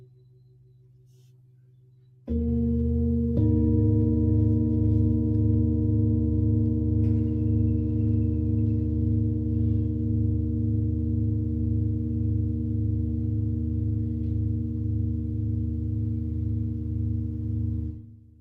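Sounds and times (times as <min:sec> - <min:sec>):
singing bowl sound healing: 0:01.7 - 0:18.4.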